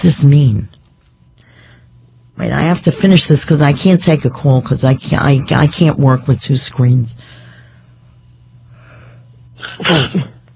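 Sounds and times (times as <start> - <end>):
speech: 0.0 - 0.8, 2.4 - 7.4, 9.6 - 10.4
person sneezing: 9.6 - 10.4.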